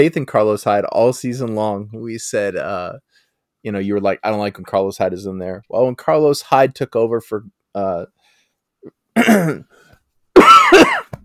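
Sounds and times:
speech: 0.0 - 8.2, 8.8 - 9.8
coughing after choking on spit: 9.2 - 9.8, 10.4 - 11.2
throat clearing after choking on spit: 9.2 - 9.8.

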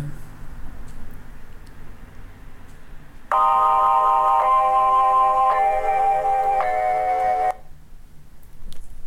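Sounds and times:
anti-addiction phone incoming-call ringtone: 3.3 - 7.6.

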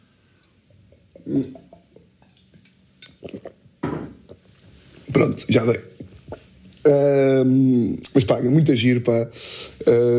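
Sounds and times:
person sipping and swallowing water: 0.4 - 4.4
speech: 1.2 - 1.7, 5.2 - 5.9, 6.8 - 10.1
glass knocking lightly: 3.8 - 4.2.

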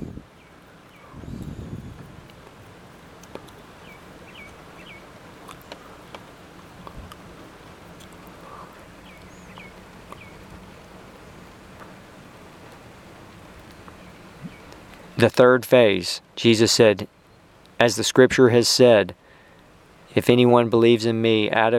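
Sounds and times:
light rain falling in a soft continuous hiss: 0.0 - 18.2, 18.8 - 20.9
faint bird chirps: 0.3 - 1.8, 3.8 - 5.1, 8.4 - 10.4
speech: 15.2 - 17.2, 17.8 - 19.2, 20.2 - 21.7.

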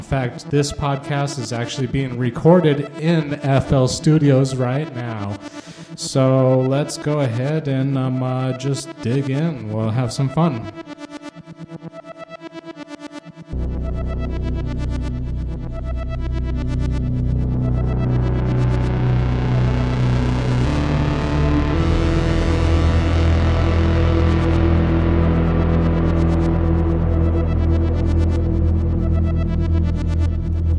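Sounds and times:
Korg monologue synthesizer sequence through reverb and delay: 0.0 - 30.7
speech: 0.1 - 10.9
low bass note held on a Sub 37 synth: 13.5 - 30.7.

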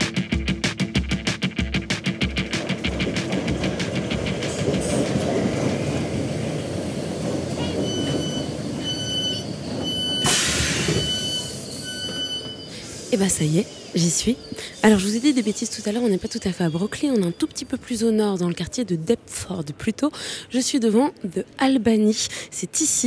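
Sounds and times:
London Underground metro train rumbling: 0.0 - 18.2
metro train wheels clattering over rail joints: 2.1 - 11.6
speech: 13.2 - 23.0.

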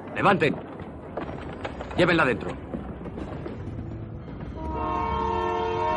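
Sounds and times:
train running between Manchuria and Moscow: 0.0 - 5.9
speech: 0.2 - 0.7, 2.0 - 2.7
sustained multi-toned train horn: 4.6 - 5.9.

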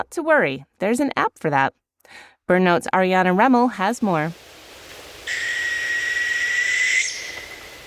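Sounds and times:
speech: 0.0 - 4.6
northern hawk owl high-pitched whistled trill near Denali National Park Alaska: 5.3 - 7.8.

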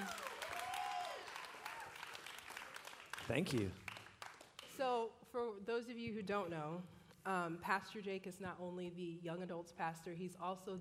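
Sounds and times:
audience applause in a large room: 0.0 - 4.6
speech: 3.3 - 3.8, 4.8 - 10.7.

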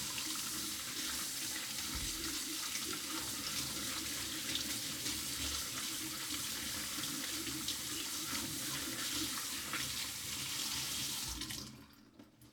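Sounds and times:
running water from a tap pouring into a sink: 0.0 - 12.4.

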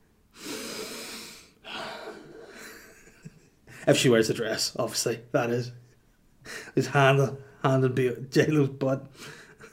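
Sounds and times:
voice imitating loud sniffing: 0.4 - 2.6
speech: 3.9 - 5.8, 6.8 - 9.4.

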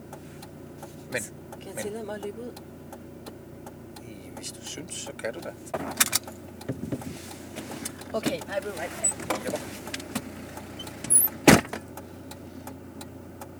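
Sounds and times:
speech: 1.1 - 2.7, 4.4 - 7.2, 8.1 - 9.9
shuffling clicks: 3.6 - 12.8
voices talking: 4.0 - 5.7, 8.1 - 10.0
rustling movement of person climbing into a car: 4.4 - 12.7
loud car door slam: 5.7 - 11.9.

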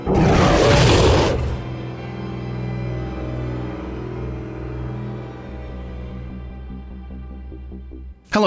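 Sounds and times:
loud rough roar: 0.0 - 1.8.

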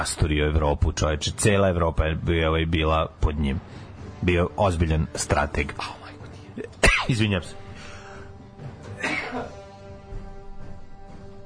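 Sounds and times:
speech: 0.0 - 6.0, 6.6 - 7.6
sick old man coughing: 6.6 - 7.2, 8.9 - 9.7.

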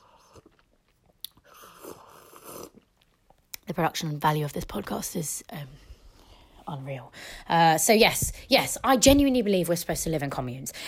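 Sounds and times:
person sipping tea with soft slurping: 0.0 - 0.7, 1.3 - 3.0
breathy mouth noises: 0.0 - 3.5
speech: 3.7 - 5.8, 6.7 - 10.8.

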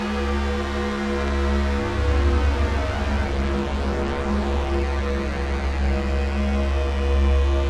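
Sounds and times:
polyphonic analog synthesizer calibrating through an effects unit: 0.1 - 7.6.

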